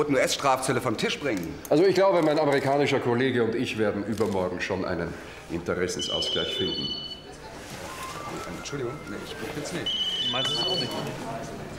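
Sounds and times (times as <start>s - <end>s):
speech: 0.0s - 7.1s, 8.4s - 11.7s
mobile phone ringtone with bright repeating electronic tones: 6.0s - 7.4s, 9.7s - 11.4s.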